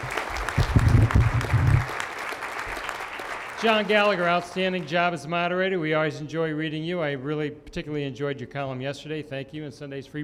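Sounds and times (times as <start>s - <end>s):
audience applause: 0.0s - 5.2s
speech: 3.6s - 10.2s.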